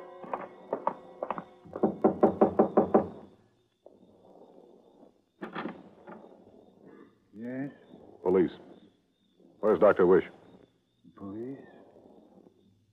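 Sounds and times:
police knocking on a motel room door: 0:00.3 - 0:03.2
speech: 0:08.3 - 0:08.6, 0:09.8 - 0:10.4.

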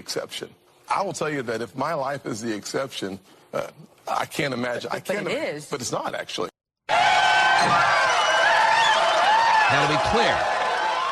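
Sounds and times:
speech: 0:00.0 - 0:06.5, 0:07.6 - 0:08.0, 0:09.7 - 0:10.5
studio audience cheering and whooping: 0:06.9 - 0:11.1.

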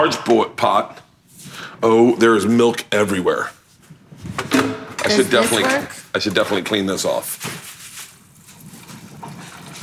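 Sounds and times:
speech: 0:00.0 - 0:01.0, 0:01.8 - 0:03.6, 0:04.4 - 0:07.7
water pouring from a refrigerator dispenser: 0:08.4 - 0:09.8.

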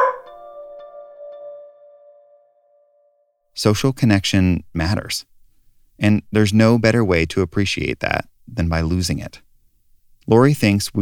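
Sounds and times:
dog barking sharply and whining: 0:00.0 - 0:00.4
speech: 0:03.6 - 0:05.3, 0:06.0 - 0:09.4, 0:10.3 - 0:11.0.

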